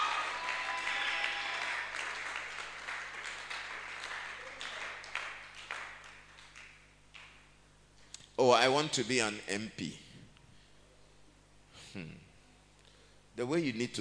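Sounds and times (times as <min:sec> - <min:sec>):
crowd applauding: 0:00.0 - 0:07.4
speech: 0:08.4 - 0:10.0, 0:13.4 - 0:14.0.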